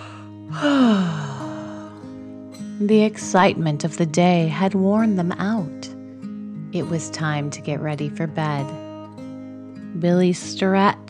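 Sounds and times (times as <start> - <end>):
person yawning: 0.0 - 2.0
speech: 2.8 - 6.0, 6.7 - 8.8, 10.0 - 11.0.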